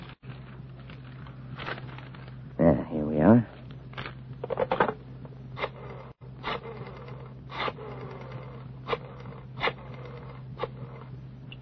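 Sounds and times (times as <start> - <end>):
pages of a thick telephone book riffling and flipping: 0.0 - 2.4, 3.5 - 4.5
low hum: 0.0 - 11.5
speech: 2.6 - 3.5.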